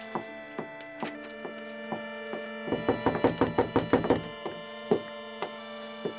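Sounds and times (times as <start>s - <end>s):
knocking on a wooden door at night: 2.6s - 5.1s.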